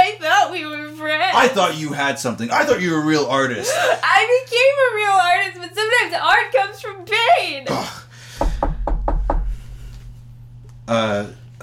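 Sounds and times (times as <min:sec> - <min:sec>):
speech: 0:01.4 - 0:08.0, 0:10.9 - 0:11.6
knocking on a door: 0:08.4 - 0:10.3.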